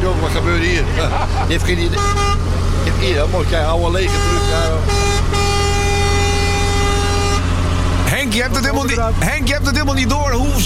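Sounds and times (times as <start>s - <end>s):
truck engine rumble: 0.0s - 10.6s
speech: 0.3s - 5.5s, 8.2s - 10.6s
laughter: 0.7s - 1.9s
1980s truck air horn blaring in a multi-tone blast: 1.7s - 8.1s.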